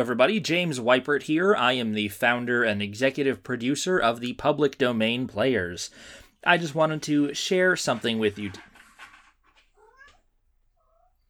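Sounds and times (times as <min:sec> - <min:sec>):
speech: 0:00.0 - 0:08.7
cat meowing: 0:09.5 - 0:11.2.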